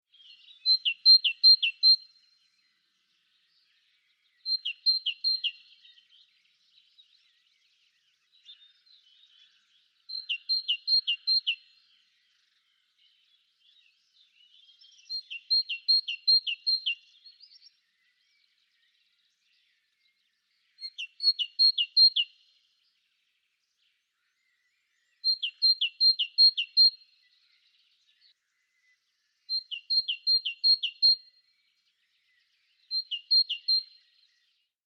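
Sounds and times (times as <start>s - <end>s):
great tit singing: 0.0s - 34.8s.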